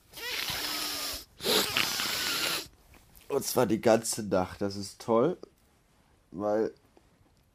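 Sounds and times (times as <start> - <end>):
long congested snorts through a blocked nose: 0.2 - 2.7
speech: 3.4 - 5.5, 6.3 - 6.8.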